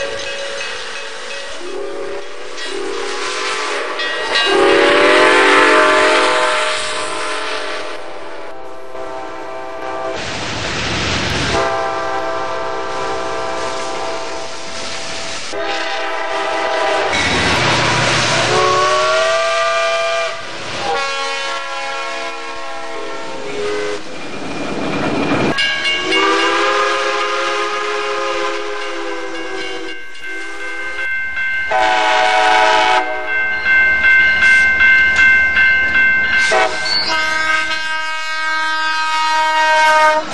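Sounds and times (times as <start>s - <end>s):
freight train rumbling past: 0.0s - 40.3s
freight train horn blasts: 1.6s - 10.2s, 11.5s - 24.0s, 25.8s - 30.9s, 31.7s - 33.5s, 36.4s - 40.3s.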